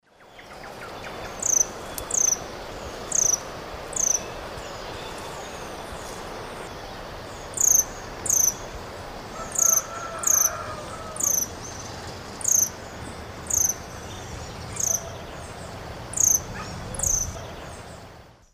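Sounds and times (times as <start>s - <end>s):
Amazilia fimbriata song: 0.0s - 18.5s.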